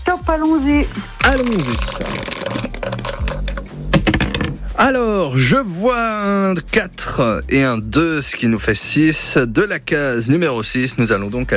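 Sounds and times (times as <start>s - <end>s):
speech: 0.2s - 2.7s, 4.8s - 11.5s
dice being thrown in a board game: 1.2s - 4.6s.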